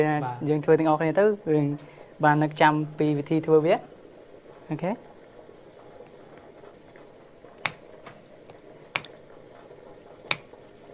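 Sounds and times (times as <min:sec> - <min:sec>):
speech: 0:00.0 - 0:03.9, 0:04.7 - 0:05.1
tofu boiling in a pot with sharp pops: 0:07.0 - 0:09.5, 0:10.2 - 0:10.9.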